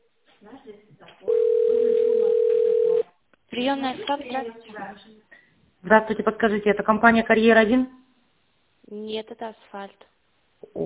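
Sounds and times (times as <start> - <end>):
speech: 0.4 - 1.5, 3.6 - 8.0, 8.9 - 10.8
telephone ringing tone on a phone line while a call is transferred to an operator: 1.3 - 3.0.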